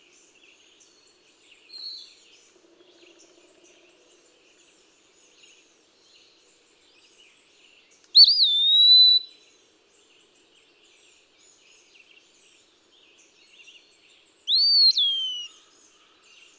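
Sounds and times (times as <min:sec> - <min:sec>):
Eastern wood-pewee whistling clear high phrase: 0:08.2 - 0:09.2, 0:14.5 - 0:15.5.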